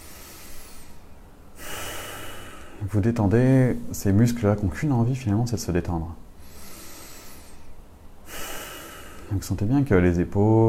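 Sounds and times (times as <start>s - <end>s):
slow exhaling breath during a relaxation exercise: 0.0s - 2.8s, 6.4s - 9.3s
speech: 2.8s - 6.2s, 9.3s - 10.6s.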